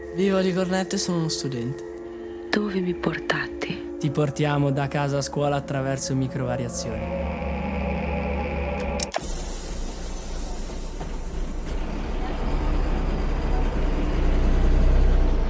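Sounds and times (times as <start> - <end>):
speech: 0.2 - 1.9, 2.6 - 7.4
bus engine rumble: 8.5 - 15.4
road hiss: 9.2 - 12.9.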